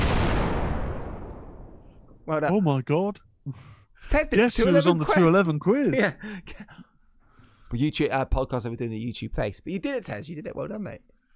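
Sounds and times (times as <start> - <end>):
booming explosion sound effect played from a soundboard: 0.0 - 2.3
speech: 2.3 - 6.9, 7.7 - 11.1.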